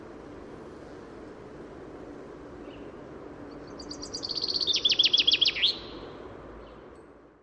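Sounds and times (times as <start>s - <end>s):
Common chaffinch Fringilla coelebs singing a descending run with a flourish: 3.5s - 6.2s.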